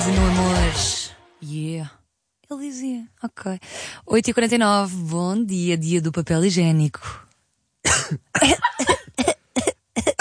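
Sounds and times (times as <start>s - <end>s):
speech: 1.5s - 7.2s, 7.8s - 9.3s
harsh coughing: 7.8s - 10.1s.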